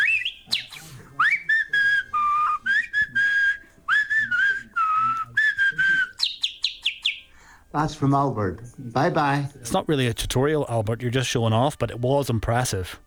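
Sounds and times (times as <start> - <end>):
person whistling an elaborate bird-like melody in a voice note: 0.0 - 7.3
speech: 7.8 - 13.0.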